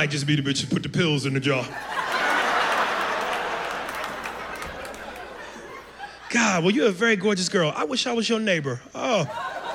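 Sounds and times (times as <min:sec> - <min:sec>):
speech: 0:00.0 - 0:02.2, 0:06.3 - 0:09.6
laughter: 0:01.6 - 0:07.8, 0:09.0 - 0:09.7
loud dense audience clapping: 0:01.9 - 0:06.0.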